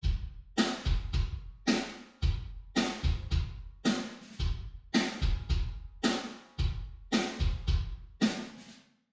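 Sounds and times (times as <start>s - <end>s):
wet kick drum: 0.0s - 1.6s, 2.2s - 3.8s, 4.4s - 5.9s, 6.6s - 8.1s
wet snare drum: 0.0s - 8.8s.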